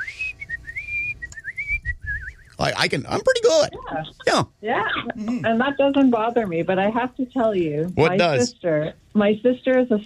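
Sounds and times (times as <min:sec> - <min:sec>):
person whistling a lively tune: 0:00.0 - 0:02.5
speech: 0:02.6 - 0:10.0.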